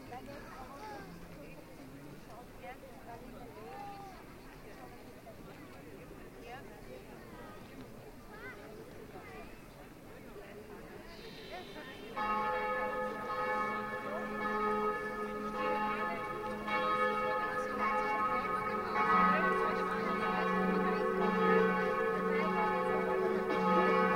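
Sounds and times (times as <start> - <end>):
big clock bells in Salzburg: 12.1 - 24.1.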